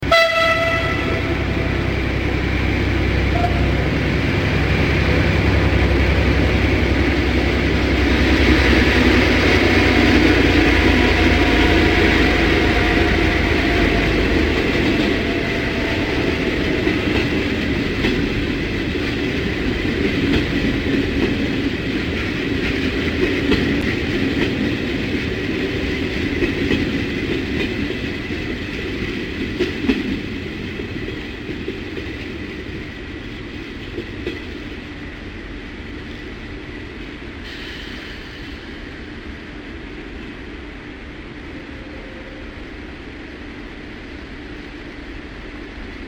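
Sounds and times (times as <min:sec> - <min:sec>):
train arriving at a station and slowing down: 0:00.0 - 0:46.0.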